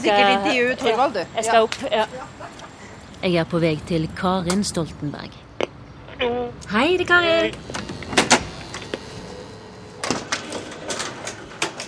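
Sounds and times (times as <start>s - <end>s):
speech: 0.0s - 2.6s, 3.2s - 5.4s, 6.2s - 7.8s
old lift mechanical hum in an apartment building: 6.6s - 11.8s
old lift creaking in an apartment building: 7.5s - 11.8s
metal lattice elevator gate clanking shut: 10.0s - 11.8s.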